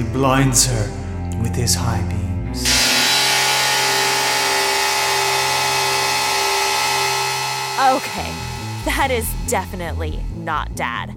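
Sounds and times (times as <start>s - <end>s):
speech: 0.2s - 2.8s, 7.8s - 11.1s
truck engine droning behind a car: 2.6s - 10.8s.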